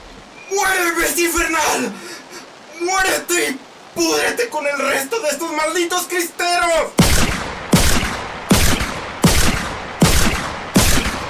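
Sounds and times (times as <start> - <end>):
speech: 1.2 - 2.0, 2.8 - 7.1
continuous noisy background: 7.0 - 11.2
gunshots: 7.0 - 11.2.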